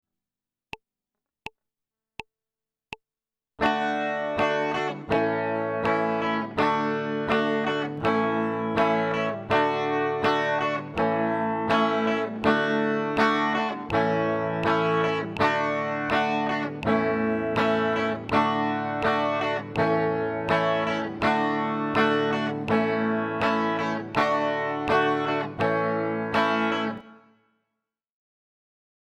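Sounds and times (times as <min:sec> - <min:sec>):
guitar chord change from D to A: 0:03.6 - 0:27.2.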